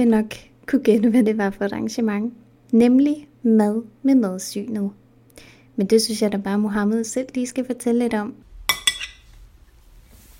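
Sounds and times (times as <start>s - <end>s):
speech: 0.0s - 8.4s
glasses clinking together for a toast: 8.7s - 9.2s.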